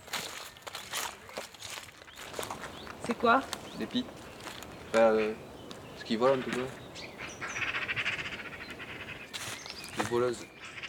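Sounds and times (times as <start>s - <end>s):
bird calling in rattling chirps: 0.3s - 10.8s
outdoor hiss: 2.6s - 10.7s
speech: 3.1s - 4.2s, 4.9s - 5.5s, 6.1s - 6.8s, 10.1s - 10.5s.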